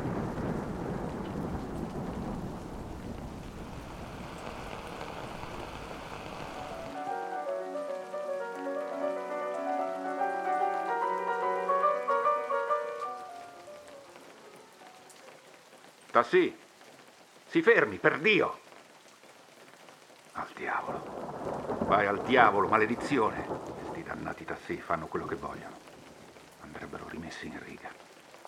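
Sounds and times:
low rumbling thunderstorm undertone: 0.0 - 7.4, 20.4 - 27.1
heavy rain of an approaching thunderstorm hissing: 0.0 - 28.4
soft tonal music-like passage: 6.5 - 15.7
speech: 16.2 - 16.6, 17.5 - 18.6, 21.9 - 25.9, 27.2 - 28.0.

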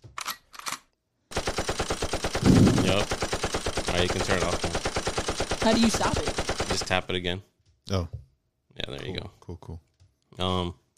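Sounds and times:
rapid burst of automatic gunfire: 1.3 - 7.0
loud sharp gunshots: 1.3 - 7.1
speech: 4.0 - 4.8, 5.6 - 8.2, 8.9 - 10.8.

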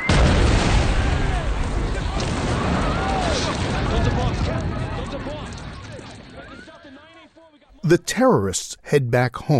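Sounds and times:
loud rumbling bomb explosion boom: 0.0 - 6.1
people screaming and shouting: 0.9 - 7.0
chaotic crowd noise: 1.2 - 9.5
speech: 7.9 - 9.5.

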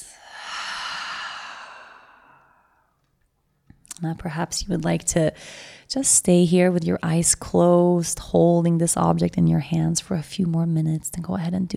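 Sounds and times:
deep long breath in and out during a guided relaxation exercise: 0.0 - 3.0, 5.4 - 5.9
speech: 4.0 - 11.7.

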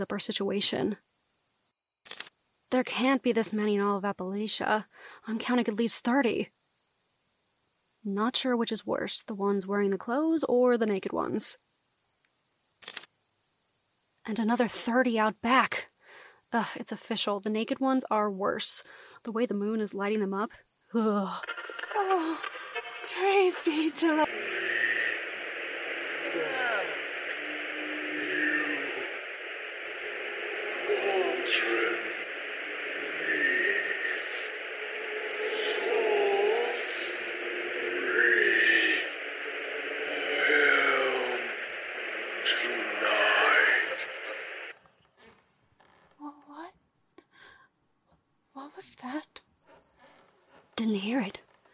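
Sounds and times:
speech: 0.0 - 1.1, 2.7 - 6.6, 8.0 - 11.7, 14.3 - 15.9, 16.5 - 24.6, 31.4 - 32.1
steady hiss of radio static with garbled fragments: 21.0 - 46.0.

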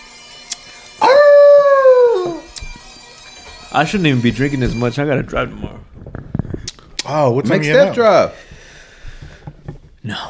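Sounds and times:
dog howling: 1.0 - 2.6
speech: 3.7 - 5.9, 7.1 - 8.4, 10.1 - 10.2.

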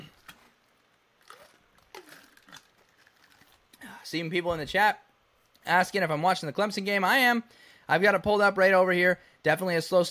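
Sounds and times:
person drinking water: 1.2 - 3.8
speech: 4.0 - 10.0.

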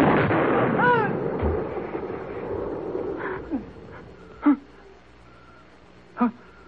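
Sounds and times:
gunshots: 0.0 - 4.1.

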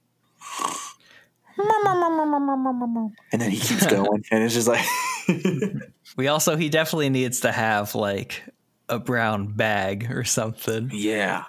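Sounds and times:
voice imitating a security guard snoring asleep in a chair: 0.4 - 1.0
speech: 1.7 - 11.4.

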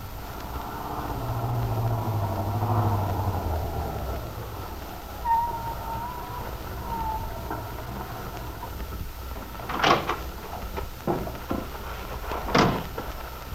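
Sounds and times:
car driving into Wakefield at daybreak: 0.0 - 13.5
high squeaks: 4.3 - 8.9.

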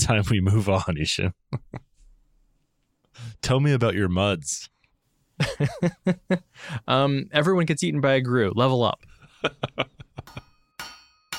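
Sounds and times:
speech: 0.1 - 1.8, 3.2 - 4.7, 5.4 - 10.5
laughter: 1.5 - 1.8, 5.4 - 6.5, 9.1 - 10.4
metal hammering in a character creation forge: 10.2 - 11.3.

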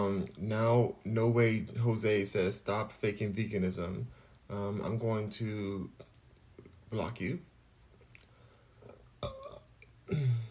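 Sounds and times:
speech: 0.0 - 6.1, 6.9 - 7.5, 10.1 - 10.4
person burping: 9.2 - 10.4.

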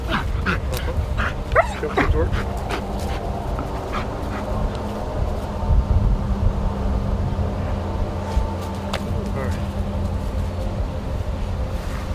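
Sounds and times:
detection dog alerting, barking and whimpering: 0.0 - 4.5
steady low rumble of machinery: 0.0 - 12.1.

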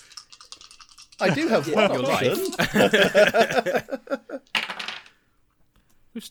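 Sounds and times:
several dice clattering and rattling: 0.0 - 1.2, 4.4 - 5.2
laughter: 1.2 - 4.5
speech: 1.2 - 4.5.

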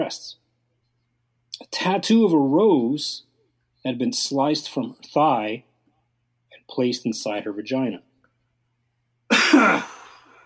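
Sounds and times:
speech: 0.0 - 0.4, 1.6 - 5.7, 6.7 - 8.1, 9.6 - 9.9
harsh forceful cough from a tickle in the throat: 9.3 - 10.3.

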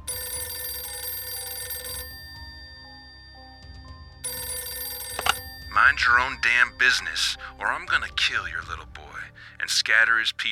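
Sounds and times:
telephone bell ringing: 0.0 - 7.6
speech: 5.8 - 10.5.

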